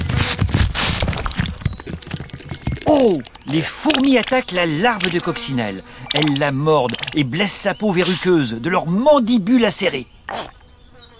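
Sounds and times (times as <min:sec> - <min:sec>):
galloping horse hoofbeats: 0:00.0 - 0:05.3
speech: 0:03.0 - 0:10.6.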